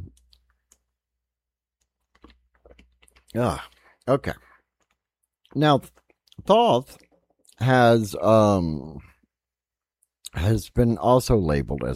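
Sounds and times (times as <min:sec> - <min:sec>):
person sipping a drink with wet clicks and lip or cup noises: 0:02.0 - 0:04.1
speech: 0:03.3 - 0:04.5, 0:05.5 - 0:07.0, 0:07.6 - 0:09.1, 0:10.3 - 0:11.9.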